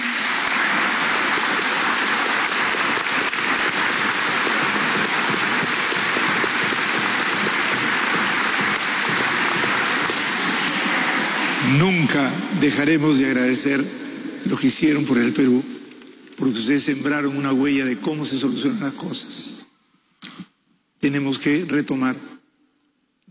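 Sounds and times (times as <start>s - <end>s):
audience applauding: 0.0s - 12.1s
speech: 12.2s - 15.7s, 16.4s - 19.6s, 21.0s - 22.3s.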